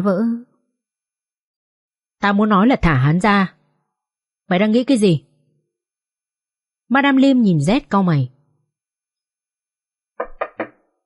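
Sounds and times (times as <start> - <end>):
speech: 0.0 - 0.5, 2.2 - 3.6, 4.5 - 5.3, 6.9 - 8.4
knocking on a door: 10.2 - 10.9.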